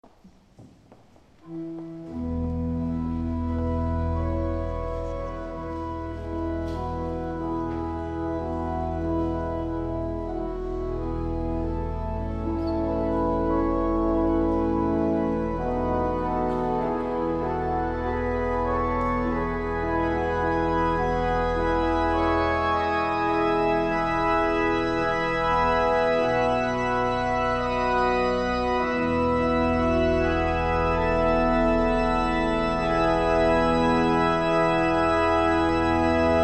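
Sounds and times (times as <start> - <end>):
organ: 1.4 - 36.4.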